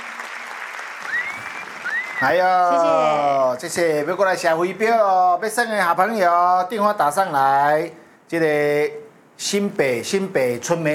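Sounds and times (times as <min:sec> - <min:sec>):
audience clapping: 0:00.0 - 0:03.0
speech: 0:02.2 - 0:10.9.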